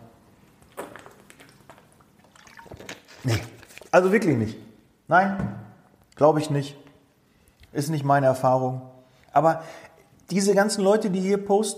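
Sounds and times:
person sipping water: 0.5s - 4.0s
speech: 3.2s - 5.6s, 6.2s - 6.8s, 7.7s - 11.7s.

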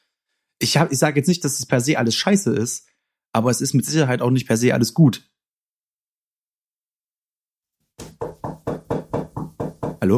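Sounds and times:
speech: 0.6s - 5.3s
loud knocking: 8.0s - 10.0s.

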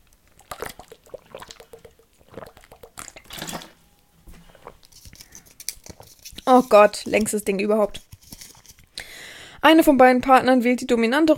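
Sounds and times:
person sipping and swallowing water: 0.0s - 7.2s
speech: 6.5s - 8.0s, 9.7s - 11.3s.

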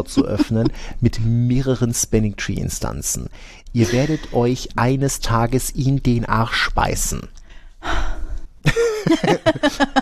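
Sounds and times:
laughter: 0.0s - 0.8s, 3.8s - 4.4s, 8.7s - 9.9s
speech: 0.0s - 8.0s, 9.1s - 9.9s
woman breathing heavily: 7.4s - 8.5s.

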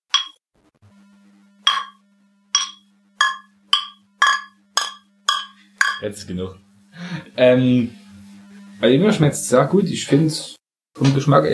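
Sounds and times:
glasses of Tiski beer clinking in a toast: 0.1s - 0.4s, 1.7s - 2.0s, 2.6s - 6.0s
speech: 6.0s - 8.0s, 8.8s - 11.5s.

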